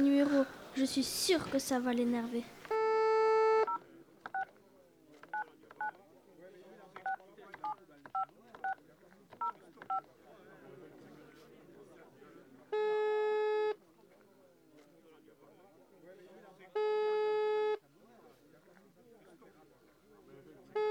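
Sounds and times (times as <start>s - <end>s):
speech: 0.0s - 2.6s
faint murmur: 0.0s - 20.9s
long steady telephone tone: 2.7s - 3.8s
telephone keypad beeps from dialing a number: 2.7s - 4.5s, 7.0s - 8.8s.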